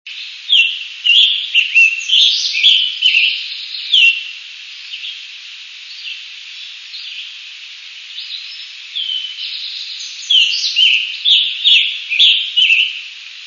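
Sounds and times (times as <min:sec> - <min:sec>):
scarlet tanager singing: 0:00.1 - 0:05.2, 0:08.1 - 0:13.2.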